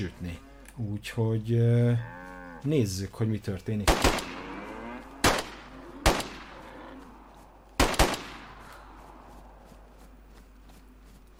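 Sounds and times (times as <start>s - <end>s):
speech: 0.0s - 4.2s
pistol shots fired at a cow in a video game: 3.9s - 4.4s, 5.2s - 6.6s, 7.8s - 8.8s.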